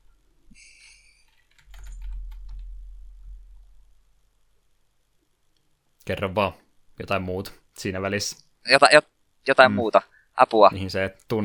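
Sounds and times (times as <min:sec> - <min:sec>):
typing on a computer keyboard: 0:01.2 - 0:02.7
low rumble: 0:01.6 - 0:05.1
speech: 0:06.1 - 0:11.4.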